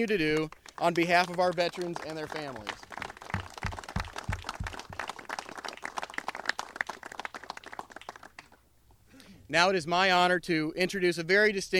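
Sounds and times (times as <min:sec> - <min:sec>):
speech: 0:00.0 - 0:02.8, 0:09.5 - 0:11.7
audience applauding: 0:00.2 - 0:08.6.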